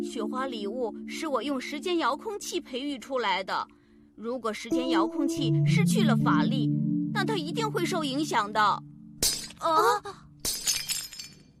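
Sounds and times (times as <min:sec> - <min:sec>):
speech: 0:00.0 - 0:08.9, 0:09.6 - 0:10.2
porcelain shattering: 0:09.2 - 0:09.6, 0:10.4 - 0:11.5.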